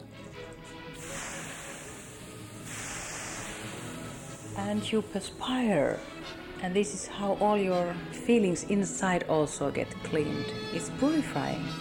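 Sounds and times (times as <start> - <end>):
steam hissing from water thrown by hand onto hot sauna stones: 1.0 - 5.1
speech: 4.6 - 11.8.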